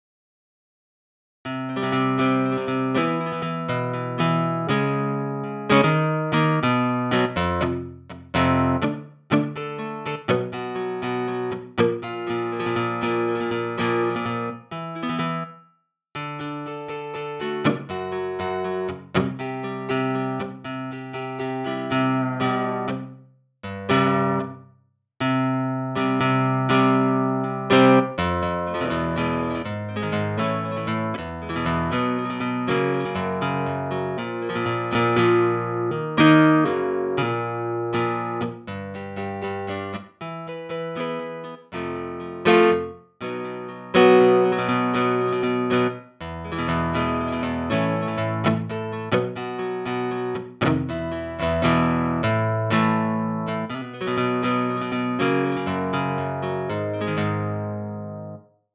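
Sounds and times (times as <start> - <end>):
guitar strumming: 1.5 - 15.6, 16.2 - 24.6, 25.2 - 58.4.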